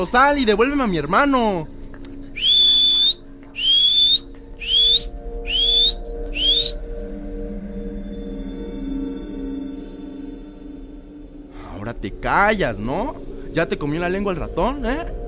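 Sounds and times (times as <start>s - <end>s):
speech: 0.0s - 1.8s, 12.0s - 15.2s
person whistling short rising notes: 2.2s - 7.1s.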